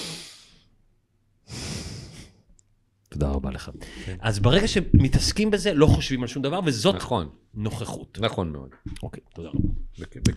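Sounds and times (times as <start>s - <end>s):
person breathing out slowly through the nose: 0.0s - 0.6s, 1.5s - 2.4s
speech: 3.1s - 10.3s.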